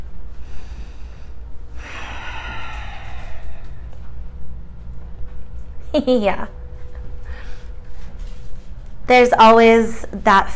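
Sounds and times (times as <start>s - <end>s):
low hum: 0.0s - 10.5s
deep yoga breathing, inhaling and exhaling: 0.2s - 5.6s, 7.1s - 8.4s
speech: 6.0s - 6.6s, 9.1s - 10.5s.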